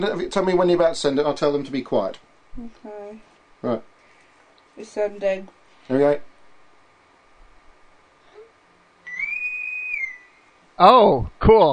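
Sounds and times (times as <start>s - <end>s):
speech: 0.0s - 3.9s, 4.8s - 6.3s, 10.8s - 11.7s
faint hiss: 0.0s - 11.7s
shrill bosun's whistle call: 9.0s - 10.5s.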